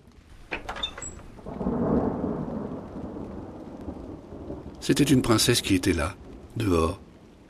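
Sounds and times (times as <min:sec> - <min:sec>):
heavy rain: 0:00.0 - 0:07.4
loud rolling thunder rumbling: 0:00.0 - 0:07.4
sharp thunder cracks: 0:01.3 - 0:07.1
speech: 0:04.8 - 0:07.0.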